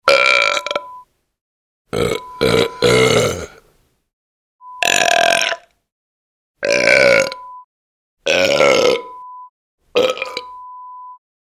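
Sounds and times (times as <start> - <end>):
big burps: 0.1 - 0.9, 1.9 - 3.6, 4.8 - 5.7, 6.6 - 7.4, 8.2 - 9.1, 9.9 - 10.6.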